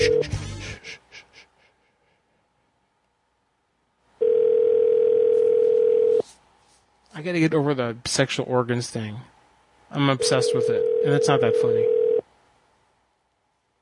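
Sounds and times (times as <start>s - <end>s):
telephone busy-line tone: 0.0s - 0.2s, 4.2s - 6.2s, 10.2s - 12.2s
speech: 7.2s - 9.3s, 9.9s - 12.0s.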